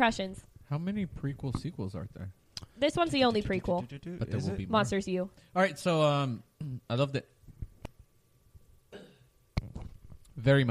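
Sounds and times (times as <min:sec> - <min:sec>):
speech: 0:00.0 - 0:07.3, 0:10.4 - 0:10.6
man burping after drinking soda: 0:08.9 - 0:09.3.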